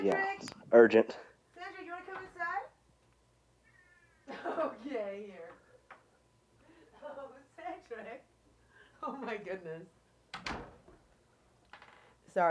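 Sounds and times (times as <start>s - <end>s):
speech: 0.0s - 1.3s, 9.0s - 10.6s
cat meowing in drawn-out wavering cries: 3.6s - 4.3s
laughter: 4.2s - 5.5s, 6.6s - 8.1s.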